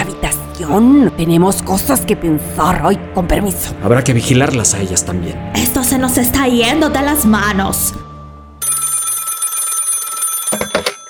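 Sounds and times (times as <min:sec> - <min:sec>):
speech: 0:00.6 - 0:08.0
hotel telephone bell ringing: 0:08.6 - 0:11.0.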